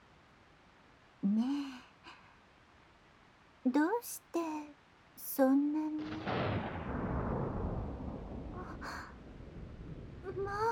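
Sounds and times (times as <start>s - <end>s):
speech: 1.2s - 1.7s, 3.7s - 4.5s, 5.4s - 6.7s
loud deep thunderclap: 6.0s - 10.6s.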